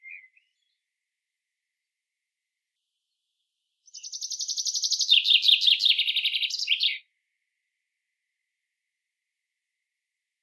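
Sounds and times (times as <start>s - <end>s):
Common chaffinch Fringilla coelebs song: 0.0s - 0.9s, 2.8s - 7.2s.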